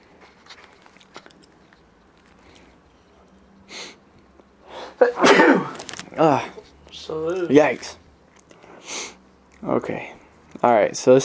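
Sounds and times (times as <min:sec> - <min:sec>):
person sneezing: 0:04.7 - 0:05.8
speech: 0:07.5 - 0:08.0, 0:09.6 - 0:11.2.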